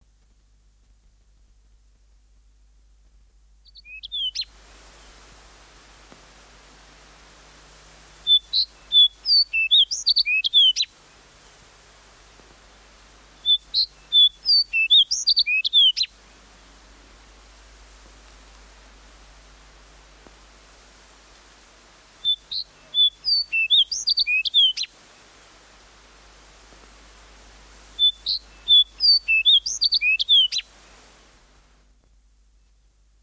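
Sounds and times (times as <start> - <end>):
songbirds singing: 3.6 - 5.3, 8.2 - 11.7, 13.2 - 16.8, 22.1 - 25.4, 27.8 - 31.3
fox sparrow singing: 3.7 - 4.5, 8.3 - 10.9, 13.4 - 16.1, 22.2 - 24.9, 28.0 - 30.6.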